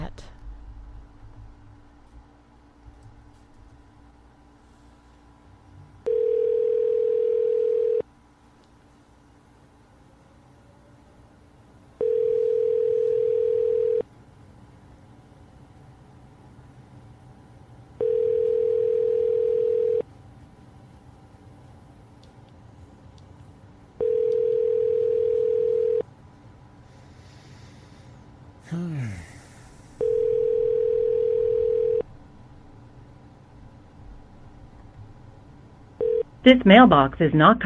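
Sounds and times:
low hum: 0.0 - 37.6
outgoing phone call ringback tone: 6.0 - 8.0, 12.0 - 14.0, 18.0 - 20.0, 24.0 - 26.0, 30.0 - 32.0, 36.0 - 36.3
speech: 36.5 - 37.6.

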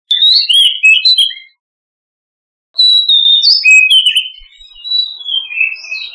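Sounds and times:
Oriental magpie-robin delivering rich whistled phrases: 0.1 - 1.6, 2.8 - 6.1.

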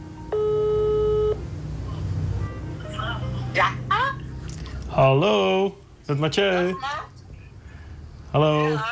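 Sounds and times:
low hum: 0.0 - 8.9
telephone ringing while calling a grandmother: 0.3 - 1.4
speech: 5.0 - 7.0, 8.3 - 8.9.

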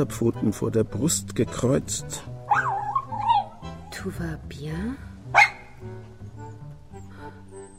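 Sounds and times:
speech: 0.0 - 2.3, 4.0 - 5.4
low steady tonal background: 0.0 - 7.7
small light-brown dog barking: 2.5 - 3.6, 5.3 - 5.8.

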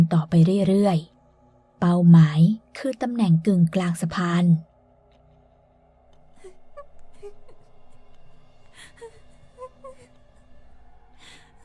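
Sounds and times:
speech: 0.1 - 1.1, 1.8 - 4.7
woman sobbing painfully on a bridge: 6.3 - 8.1, 8.7 - 10.5, 11.2 - 11.6.

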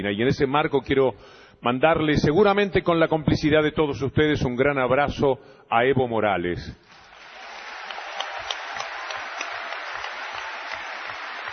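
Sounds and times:
speech: 0.0 - 7.0
audience applause at a talk and book presentation: 6.9 - 11.5.

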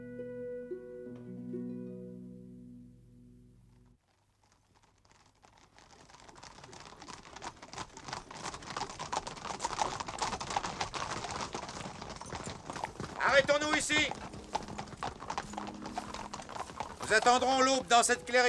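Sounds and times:
horses' hooves clip-clopping: 4.0 - 18.4
speech: 17.1 - 18.4.

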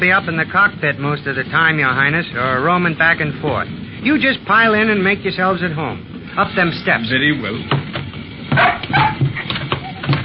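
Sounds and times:
speech: 0.0 - 7.9
low noise: 0.0 - 10.2
dog barking: 8.5 - 10.0
dog whimpering: 8.6 - 10.2.

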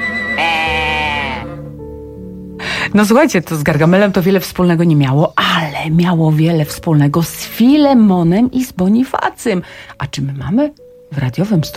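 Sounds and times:
ram bleating: 0.0 - 1.7
speech: 2.9 - 11.7.

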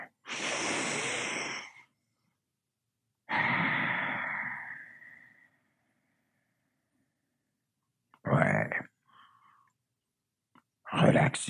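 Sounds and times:
person lying down breathing deeply to relax: 0.2 - 2.2, 3.3 - 6.1
speech: 11.2 - 11.4.

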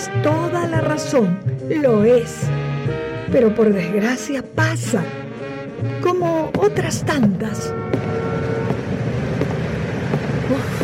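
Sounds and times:
speech: 0.1 - 8.1
dense road traffic rumble: 6.5 - 10.8.

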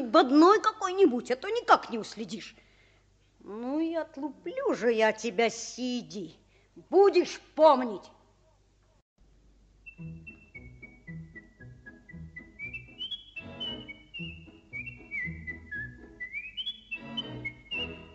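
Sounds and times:
busy low noise: 0.0 - 18.1
speech: 0.1 - 2.6, 3.4 - 8.2, 10.0 - 10.3
boy whistling a lively melody loudly: 9.9 - 18.1.

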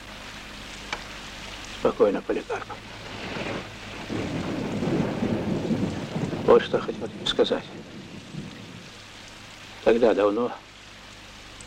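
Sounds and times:
steady rain: 0.0 - 11.6
speech: 1.8 - 3.2, 6.5 - 7.9, 9.8 - 10.7
low rumbling thunder: 2.8 - 10.0.

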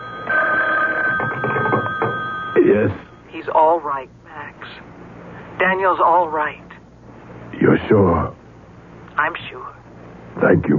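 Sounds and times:
telephone bell ringing: 0.0 - 3.2
speech: 2.8 - 4.8, 5.6 - 6.6, 7.6 - 8.4, 9.2 - 9.8, 10.4 - 10.7.

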